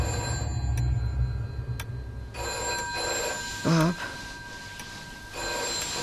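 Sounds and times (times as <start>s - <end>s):
telephone ringing: 0.0s - 1.0s, 2.3s - 6.0s
low rumble: 0.0s - 3.5s
speech: 3.6s - 4.2s.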